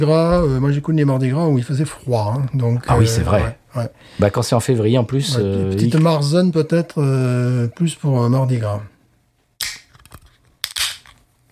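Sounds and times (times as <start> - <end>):
speech: 0.0 - 8.9
beer can cracked open with metallic snap and fizzing hiss: 9.6 - 11.2.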